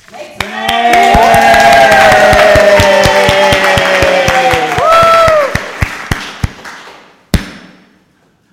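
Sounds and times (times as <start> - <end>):
very large crowd cheering and shouting: 0.4 - 6.2
sharp claps and thumps: 0.4 - 7.9
loud thud: 7.3 - 8.0.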